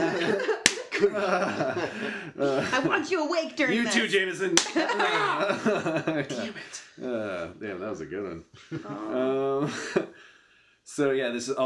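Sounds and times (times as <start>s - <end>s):
light laughter from several people: 0.0s - 7.6s, 8.2s - 10.2s
people chatting: 0.0s - 10.2s, 10.9s - 11.6s
slap to the face: 0.6s - 0.9s, 4.6s - 4.8s
speech: 1.0s - 10.3s, 10.9s - 11.6s.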